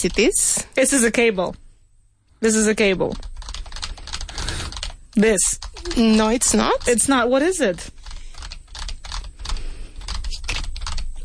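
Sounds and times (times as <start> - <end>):
speech: 0.0 - 1.6, 2.4 - 3.3, 5.2 - 8.0
rapid typing on a computer keyboard: 3.1 - 11.2.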